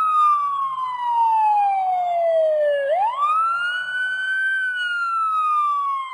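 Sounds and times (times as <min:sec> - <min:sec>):
siren wailing: 0:00.0 - 0:06.1.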